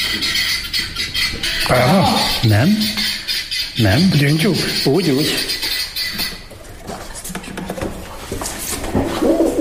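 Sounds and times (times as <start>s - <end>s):
pigeon cooing: 0.0s - 6.5s, 8.9s - 9.5s
speech: 1.7s - 3.1s, 3.8s - 5.5s.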